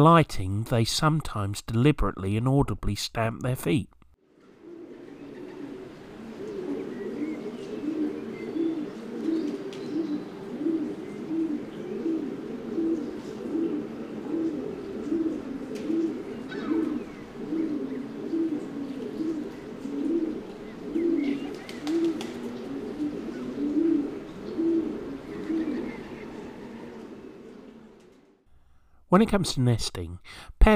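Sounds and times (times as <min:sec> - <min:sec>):
speech: 0:00.0 - 0:04.0, 0:29.2 - 0:30.7
feral pigeons cooing: 0:04.2 - 0:28.5.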